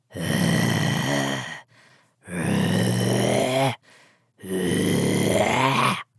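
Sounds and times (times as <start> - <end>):
zombie creature growling: 0.1 - 1.6, 2.3 - 3.8, 4.4 - 6.1.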